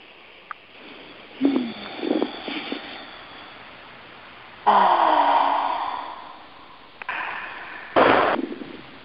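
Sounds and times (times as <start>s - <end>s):
group taking slow deep breaths together: 0.8s - 3.8s, 4.6s - 8.0s.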